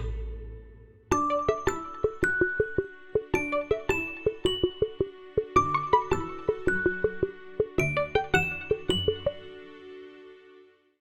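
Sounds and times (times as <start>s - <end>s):
phone alarm ringtone: 1.1s - 9.5s.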